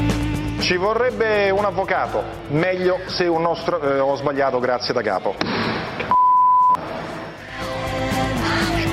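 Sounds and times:
music: 0:00.0 - 0:08.9
speech: 0:00.6 - 0:06.0
censorship bleep over a profanity: 0:06.1 - 0:06.8.

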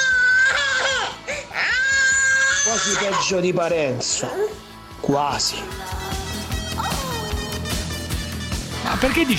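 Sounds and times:
baby crying in someone's arms: 0:00.0 - 0:04.7, 0:05.7 - 0:07.8
speech: 0:02.6 - 0:06.2, 0:08.9 - 0:09.3.

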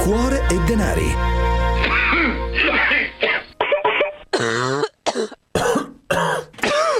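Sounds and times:
speech: 0:00.1 - 0:01.4
person clearing throat: 0:01.8 - 0:06.9
person coughing: 0:01.8 - 0:06.9.

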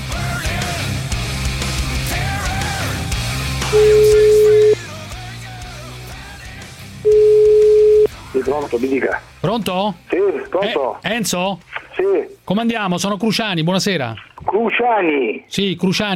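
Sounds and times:
music: 0:00.0 - 0:13.9
telephone ringback tone of an outgoing call: 0:03.7 - 0:04.8, 0:07.1 - 0:08.1
speech: 0:08.4 - 0:16.1.

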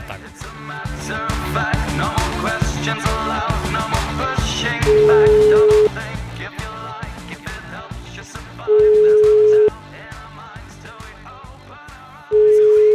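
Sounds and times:
loud rhythmic music: 0:00.0 - 0:12.9
telephone ringing tone of a call being placed: 0:04.9 - 0:05.9, 0:08.7 - 0:09.7, 0:12.4 - 0:12.9.

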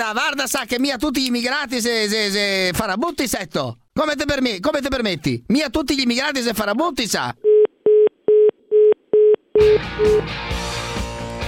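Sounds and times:
speech: 0:00.0 - 0:07.5, 0:09.6 - 0:10.6
phone line busy-signal beeps: 0:07.5 - 0:10.2.

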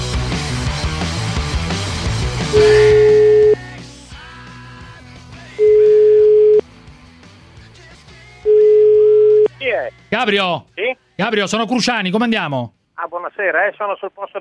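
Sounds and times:
music: 0:00.0 - 0:12.6
telephone ringback tone while a call is placed: 0:02.5 - 0:03.7, 0:05.6 - 0:06.6, 0:08.5 - 0:09.5
speech: 0:10.2 - 0:14.3.

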